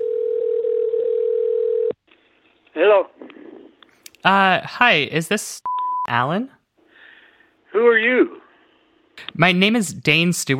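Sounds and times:
long steady telephone ringing tone: 0.0 - 2.0
speech: 2.8 - 3.3, 4.2 - 6.6, 7.7 - 8.4, 9.2 - 10.5.

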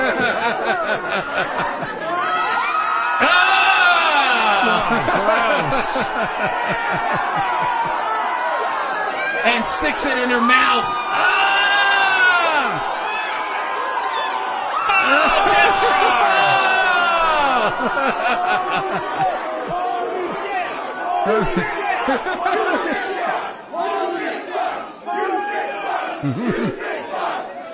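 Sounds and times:
scattered laughter: 0.0 - 2.4, 4.4 - 8.2, 14.9 - 23.5, 26.1 - 27.3
large wrestling arena crowd roaring and chanting: 0.0 - 27.7
speech: 0.5 - 2.4, 4.9 - 8.2, 9.4 - 11.4, 17.8 - 19.5, 21.2 - 23.4, 26.2 - 26.9.

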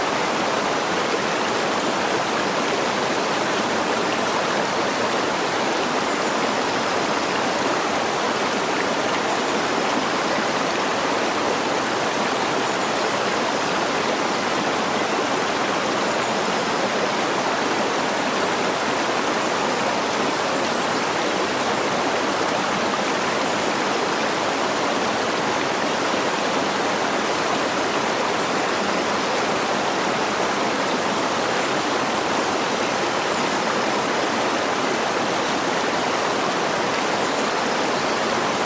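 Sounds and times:
waterfall rushing: 0.0 - 38.6.

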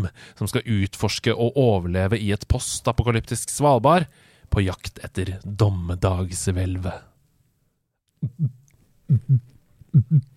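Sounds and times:
speech: 0.0 - 7.1, 8.2 - 10.3
voice imitating a heartbeat: 8.2 - 10.3.

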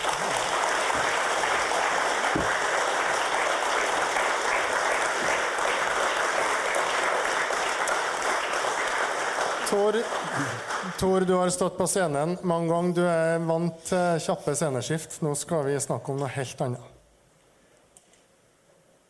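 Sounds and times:
live audience applauding: 0.0 - 11.5
speech: 9.8 - 16.9.

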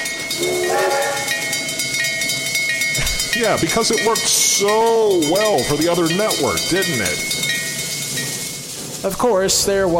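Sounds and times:
train rumbling along with steady rail clatter: 0.0 - 9.9
loud wavering train steam whistle: 0.4 - 1.5
speech: 3.4 - 7.5, 9.0 - 9.9.

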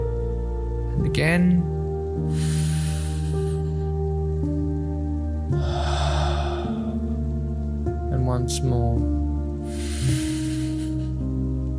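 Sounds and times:
steady sustained musical drone: 0.0 - 11.7
speech: 1.0 - 2.9, 8.4 - 10.2
slow guided breathing in and out: 2.2 - 4.1, 5.5 - 7.6, 9.6 - 11.4.

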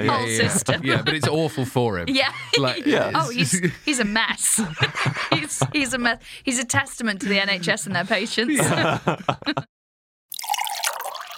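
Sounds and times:
laughter: 0.0 - 9.7
speech: 0.0 - 9.7
water pouring into a vessel: 10.3 - 11.3.

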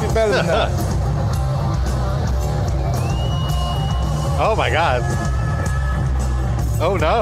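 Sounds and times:
speech: 0.2 - 0.9, 4.4 - 5.3, 6.8 - 7.1
large crowd clapping and cheering: 0.9 - 7.1
whoops and shouts from the crowd: 2.7 - 6.4.

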